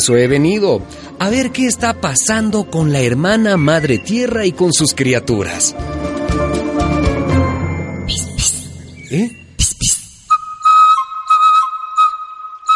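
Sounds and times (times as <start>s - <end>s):
speech: 0.0s - 6.4s, 9.1s - 9.9s
busy music: 0.0s - 12.7s
faint chirpy accents: 7.6s - 10.2s
swooping effects: 7.9s - 10.7s
clear steady whistle: 8.1s - 12.7s.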